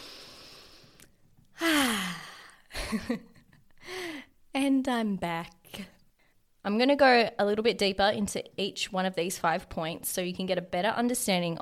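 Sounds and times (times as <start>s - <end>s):
person taking deep breaths: 0.0s - 2.7s, 3.8s - 4.4s
speech: 2.9s - 3.3s, 4.6s - 5.9s, 6.6s - 11.6s.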